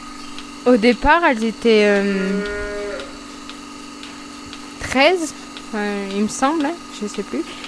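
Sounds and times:
steady hum: 0.0s - 7.6s
speech: 0.6s - 2.7s, 4.9s - 7.6s
cow mooing on a breeding farm with calves: 2.1s - 3.2s.

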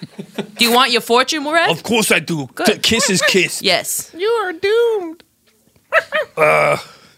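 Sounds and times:
speech: 0.4s - 4.8s, 6.1s - 6.9s
dog drawn-out whining bark: 5.9s - 6.4s.

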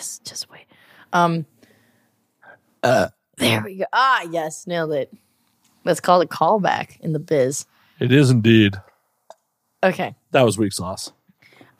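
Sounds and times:
speech: 1.1s - 1.5s, 2.8s - 5.2s, 5.8s - 8.9s, 9.8s - 11.2s
burp: 2.8s - 3.7s.

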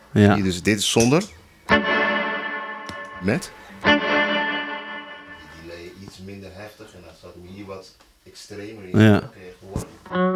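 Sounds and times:
speech: 0.1s - 1.4s, 3.2s - 4.0s, 6.6s - 10.3s
electric guitar through clean booster pedal feeding reverb: 1.7s - 5.6s.

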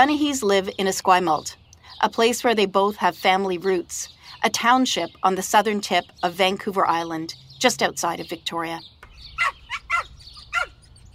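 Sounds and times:
speech: 0.0s - 9.6s
small chatty dog yapping: 9.4s - 10.9s.

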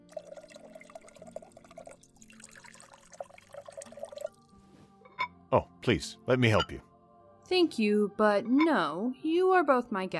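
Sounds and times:
drink poured into a glass: 0.0s - 4.5s
speech: 5.5s - 6.9s, 7.5s - 10.1s.

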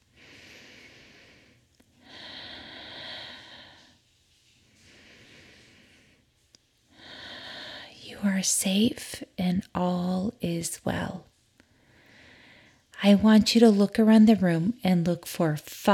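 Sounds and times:
deep breaths during a guided relaxation exercise: 0.1s - 4.0s, 4.7s - 6.3s, 6.9s - 8.0s
speech: 8.3s - 11.3s, 13.0s - 15.9s.

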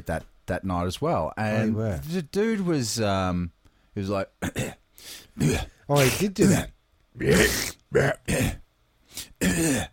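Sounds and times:
speech: 0.0s - 8.6s, 9.2s - 9.9s
harsh throaty coughing: 4.4s - 8.6s, 9.2s - 9.9s.

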